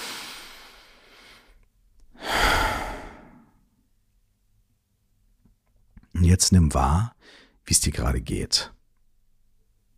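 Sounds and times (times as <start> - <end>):
deep breath in through the nose and out through the mouth: 0.0 - 1.6, 2.2 - 3.6, 7.2 - 7.6
speech: 6.3 - 8.8.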